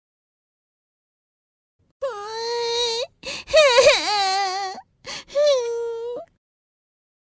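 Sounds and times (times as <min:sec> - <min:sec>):
young voice crying in a forest: 0:02.0 - 0:06.3.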